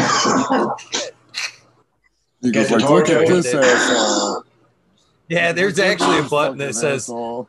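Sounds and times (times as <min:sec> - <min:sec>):
person coughing harshly: 0:00.0 - 0:01.6
faint steady hum: 0:00.0 - 0:07.4
speech: 0:00.5 - 0:00.9, 0:02.4 - 0:04.5, 0:05.3 - 0:07.4.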